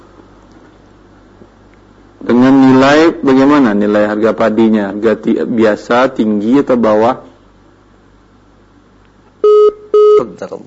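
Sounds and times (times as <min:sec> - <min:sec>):
speech: 0:02.2 - 0:07.3
quiet telephone line hiss: 0:09.4 - 0:10.4.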